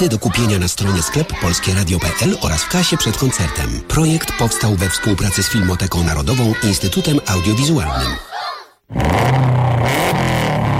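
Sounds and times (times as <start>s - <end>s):
speech: 0.0s - 10.3s
280-horsepower rally car engine revving hard: 8.9s - 10.7s.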